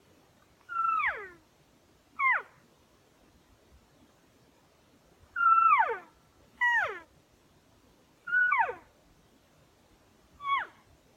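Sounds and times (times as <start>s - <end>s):
mews: 0.6s - 1.5s, 2.2s - 2.6s, 5.3s - 7.1s, 8.2s - 9.0s, 10.4s - 10.9s
calls: 0.7s - 1.4s, 2.2s - 2.6s, 5.4s - 7.1s, 8.3s - 8.9s, 10.4s - 10.8s.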